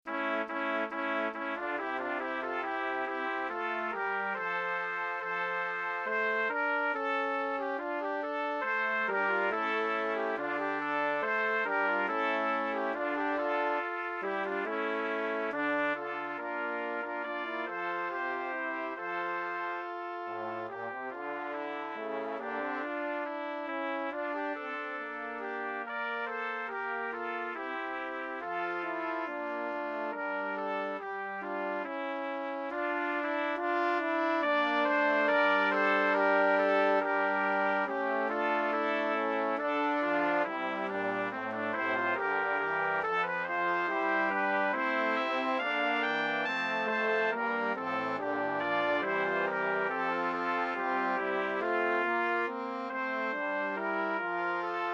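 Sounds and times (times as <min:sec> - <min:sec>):
brass quintet playing: 0:00.0 - 0:54.9.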